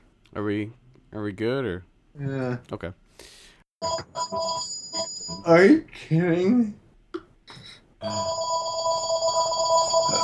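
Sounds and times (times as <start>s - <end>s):
speech: 0.3s - 4.7s, 5.3s - 6.8s, 8.0s - 8.5s
telephone ringing with electronic trill: 3.8s - 5.5s, 8.0s - 10.2s.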